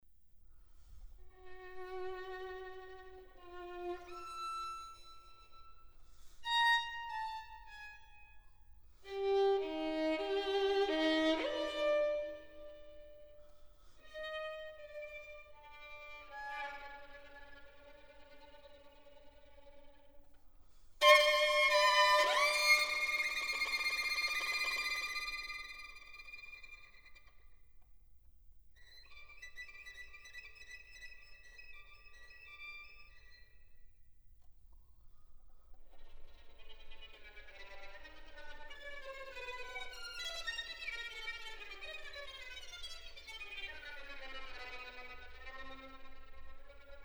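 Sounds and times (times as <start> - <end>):
solo violin piece: 1.3 - 13.4, 14.0 - 20.2, 21.0 - 27.3, 36.0 - 47.0.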